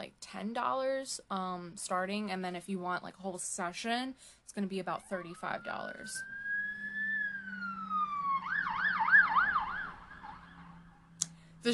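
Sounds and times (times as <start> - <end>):
speech: 0.1 - 6.4
ambulance siren passing on the street: 4.9 - 11.2.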